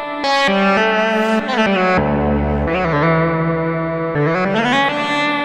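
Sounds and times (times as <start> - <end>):
EWI lead on Kurzweil K2000 synthesizer: 0.1 - 5.2.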